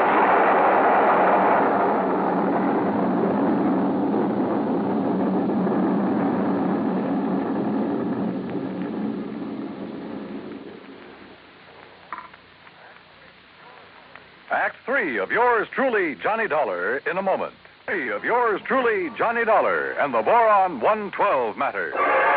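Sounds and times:
laboratory building exploding: 0.0s - 11.6s
speech: 14.6s - 22.2s.

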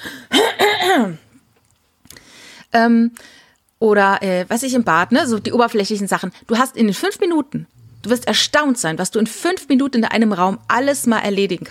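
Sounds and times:
person clearing throat: 0.3s - 1.2s
speech: 1.0s - 1.2s, 2.8s - 11.6s.

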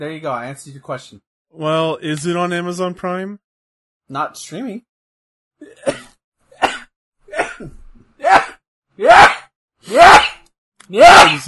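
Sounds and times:
speech: 0.0s - 3.4s, 4.1s - 4.9s, 7.6s - 7.8s, 10.9s - 11.4s
person sneezing: 6.6s - 10.4s.

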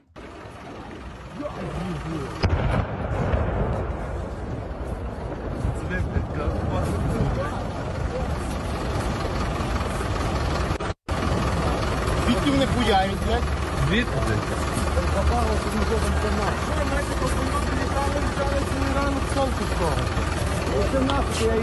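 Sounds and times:
people talking excitedly: 0.0s - 2.5s, 5.0s - 8.9s, 11.8s - 21.6s
missile strike explosions on an airport in Ivano-Frankivsk, western Ukraine: 0.2s - 12.5s
speech: 1.4s - 3.3s, 12.6s - 21.6s
sharp boom: 2.4s - 7.6s.

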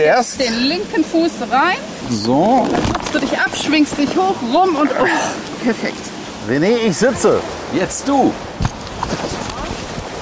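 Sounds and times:
speech: 0.0s - 9.2s
horse hooves walking: 2.3s - 6.3s, 8.6s - 10.1s.

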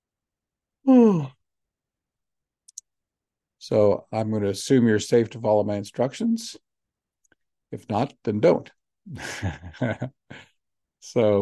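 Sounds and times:
person yawning: 0.8s - 1.4s
speech: 3.7s - 6.6s, 7.7s - 11.4s.

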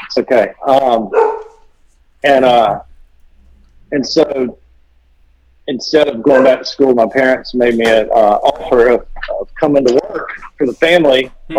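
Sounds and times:
faint murmur: 0.0s - 11.5s
speech: 0.2s - 1.3s, 2.2s - 2.9s, 3.9s - 4.6s, 5.7s - 11.5s
dog bark: 1.1s - 1.6s, 6.3s - 6.7s.

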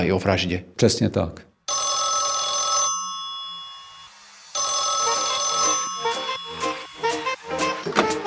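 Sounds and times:
speech: 0.0s - 1.5s
old-fashioned police desk telephone bell ringing: 1.7s - 7.8s.

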